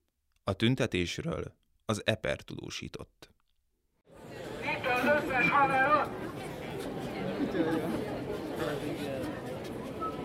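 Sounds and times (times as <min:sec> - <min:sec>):
speech: 0:00.5 - 0:03.3, 0:05.0 - 0:06.2, 0:07.5 - 0:09.1
large outdoor crowd chattering and murmuring: 0:04.1 - 0:10.2.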